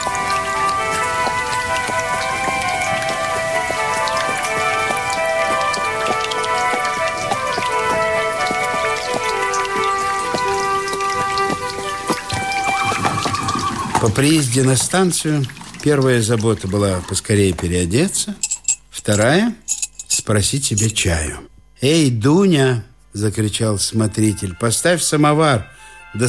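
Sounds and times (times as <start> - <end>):
heavy pouring rain in a sudden downpour on a hot day: 0.0 - 15.0
speech: 14.0 - 18.5, 19.1 - 19.7, 20.3 - 26.2.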